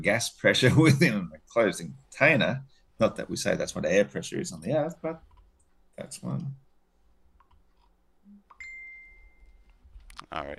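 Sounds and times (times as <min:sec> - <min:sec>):
speech: 0:00.0 - 0:05.3, 0:06.0 - 0:06.6, 0:10.3 - 0:10.5
phone notification ding: 0:08.6 - 0:09.6.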